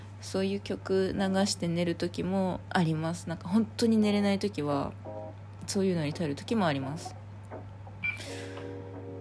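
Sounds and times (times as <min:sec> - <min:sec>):
low electrical hum: 0:00.0 - 0:09.1
speech: 0:00.2 - 0:05.1, 0:05.7 - 0:07.2
fire alarm low-battery warning chirp: 0:08.0 - 0:08.7.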